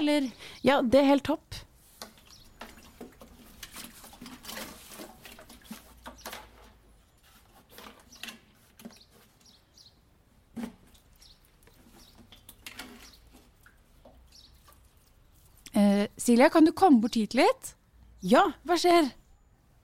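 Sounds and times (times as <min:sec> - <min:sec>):
speech: 0:00.0 - 0:01.7, 0:16.3 - 0:19.2
water from a heavy full watering can pattering onto plants in a garden: 0:01.8 - 0:06.8, 0:10.5 - 0:15.8.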